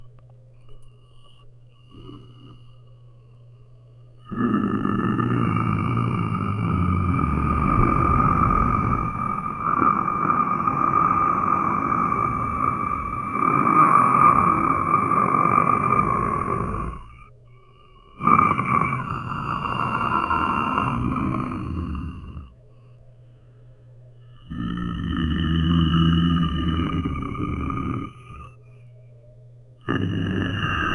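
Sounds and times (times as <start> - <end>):
soft goblin grunting: 4.2 - 17.3, 18.1 - 22.6, 24.4 - 28.5, 29.9 - 30.9.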